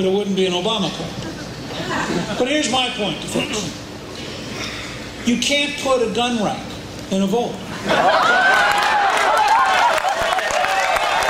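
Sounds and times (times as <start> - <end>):
speech: 0.0 - 3.8, 4.6 - 8.4
laughter: 1.0 - 2.6, 7.7 - 10.6
audience applause: 8.0 - 11.2.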